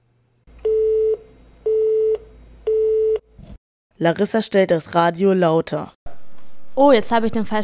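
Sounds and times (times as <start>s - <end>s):
disconnected phone line tone beeps: 0.6s - 3.2s
speech: 4.0s - 6.0s, 6.8s - 7.6s.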